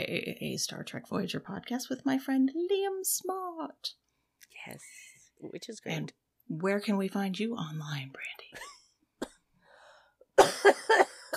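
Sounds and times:
speech: 0.0s - 8.7s
faint breath: 9.6s - 10.3s
person coughing harshly: 10.4s - 11.3s.

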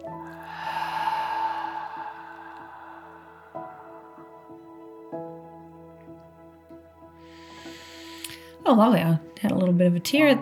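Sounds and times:
soft sustained music: 0.0s - 10.4s
breath drawn in through the nose: 0.1s - 5.1s, 7.2s - 8.6s
long airy exhale during a guided breathing exercise: 0.1s - 5.1s, 7.2s - 8.6s
speech: 8.7s - 10.4s.

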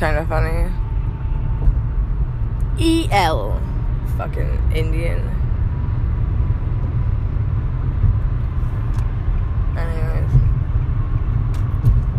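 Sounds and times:
speech: 0.0s - 0.8s, 2.8s - 5.4s
heavy engine rumble inside a moving car: 0.0s - 12.1s
road noise inside a moving car: 0.0s - 12.1s.

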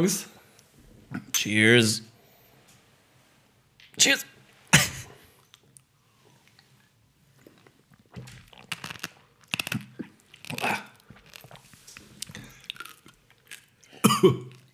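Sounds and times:
speech: 0.0s - 0.4s, 1.1s - 2.1s, 4.0s - 4.9s, 14.2s - 14.4s
cough-like burst: 4.7s - 5.2s, 14.0s - 14.7s
crunchy chewing of a coffee bean: 7.4s - 14.7s.

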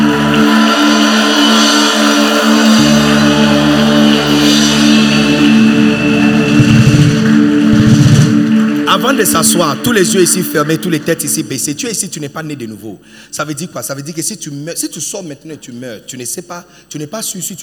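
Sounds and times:
congregation cheering and shouting for joy: 0.0s - 12.0s
speech: 9.2s - 17.6s.

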